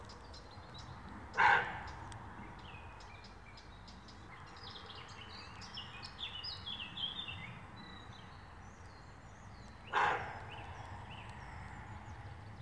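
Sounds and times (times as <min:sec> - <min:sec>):
small birds singing and twittering: 0:00.0 - 0:12.6
roe deer buck barking in alarm: 0:01.4 - 0:02.0, 0:09.9 - 0:10.5.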